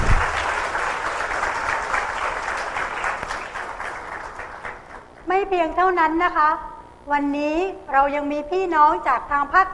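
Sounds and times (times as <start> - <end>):
large audience applauding: 0.0 - 5.2
speech: 5.4 - 9.7.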